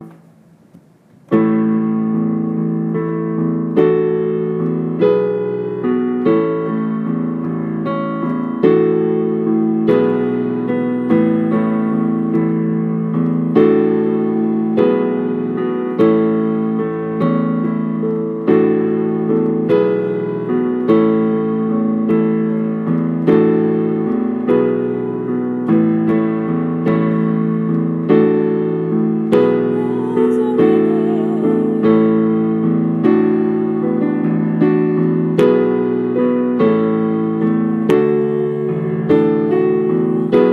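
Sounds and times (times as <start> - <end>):
piano: 0.0 - 40.5.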